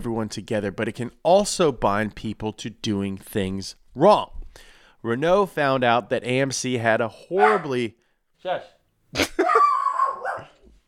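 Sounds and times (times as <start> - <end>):
speech: 0.0 - 9.4
small dog barking: 7.4 - 7.7, 9.5 - 10.6.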